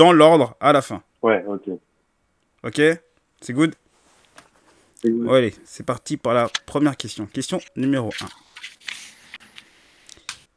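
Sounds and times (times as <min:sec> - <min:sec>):
speech: 0:00.0 - 0:01.9, 0:02.6 - 0:03.8, 0:05.0 - 0:09.0
paper sheets rustling and crinkling as they are pulled out: 0:05.7 - 0:10.5.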